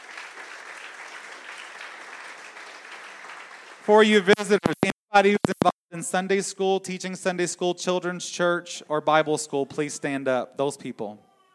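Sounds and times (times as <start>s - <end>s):
crowd applauding in a church: 0.0s - 4.4s
speech: 3.9s - 11.3s.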